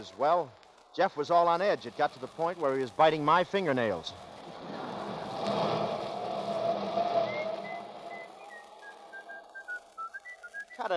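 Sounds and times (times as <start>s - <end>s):
speech: 0.0s - 4.8s
broad rumbling background: 4.0s - 9.1s
person whistling short bright notes: 7.0s - 10.9s.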